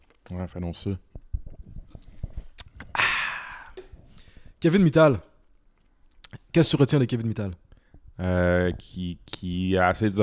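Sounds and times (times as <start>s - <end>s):
speech: 0.3s - 1.1s, 4.6s - 5.3s, 6.6s - 7.6s, 8.2s - 10.2s
taking a sip of soft drink: 1.1s - 4.5s.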